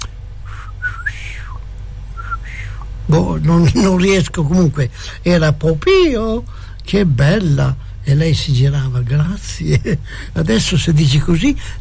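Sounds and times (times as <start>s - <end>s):
whistled catcall: 0.0s - 1.6s, 2.2s - 2.8s
steady low hum: 0.0s - 11.7s
speech: 3.1s - 11.7s.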